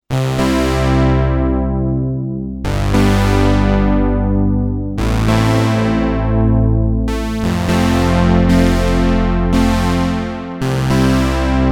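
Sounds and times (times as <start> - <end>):
polyphonic synthesizer: 0.1 - 11.7.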